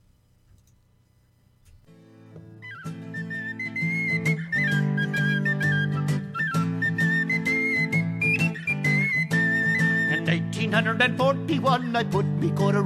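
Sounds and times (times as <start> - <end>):
penny whistle playing lively Irish folk melody: 2.5 - 12.8
strummed band accompaniment: 2.7 - 11.0
speech: 10.7 - 12.8.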